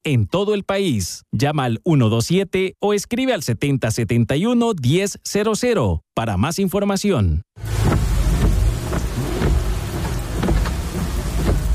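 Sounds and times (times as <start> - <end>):
speech: 0.0 - 8.1
steady heavy rain: 7.6 - 11.7.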